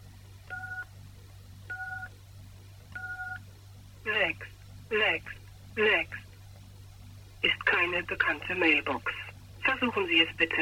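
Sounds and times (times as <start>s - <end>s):
DTMF keypad tones from entering a mailbox number on a phone: 0.5s - 0.9s, 1.7s - 2.1s, 3.0s - 3.4s
speech: 4.3s - 6.2s, 7.8s - 9.2s, 9.8s - 10.5s.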